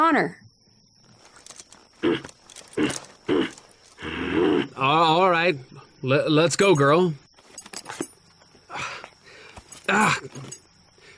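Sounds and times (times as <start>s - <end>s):
speech: 0.0s - 0.4s, 2.0s - 3.6s, 4.7s - 7.2s, 9.9s - 10.6s
mare snorting and shifting: 2.0s - 4.8s.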